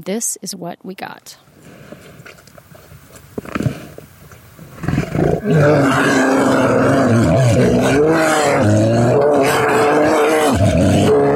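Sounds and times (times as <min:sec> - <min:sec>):
speech: 0:00.0 - 0:02.4, 0:05.4 - 0:06.3
grizzly bear roaring at a bison carcass in Yellowstone: 0:04.7 - 0:11.3.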